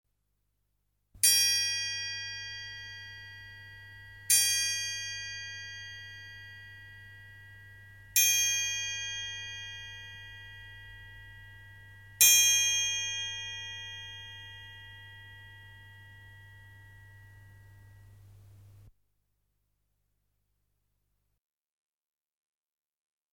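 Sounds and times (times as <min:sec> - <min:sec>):
clock: 0:01.2 - 0:18.0.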